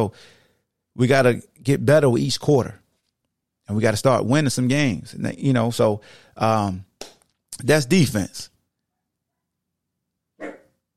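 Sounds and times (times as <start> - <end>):
speech: 0.0 - 0.4, 1.0 - 2.8, 3.7 - 8.5
dog barking: 10.4 - 10.8.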